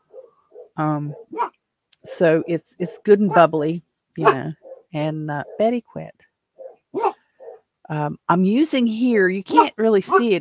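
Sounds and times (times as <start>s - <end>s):
dog barking: 0.1s - 2.2s, 2.8s - 3.5s, 4.2s - 5.7s, 6.6s - 7.6s, 9.5s - 10.4s
speech: 0.8s - 1.5s, 2.2s - 6.3s, 7.9s - 10.4s.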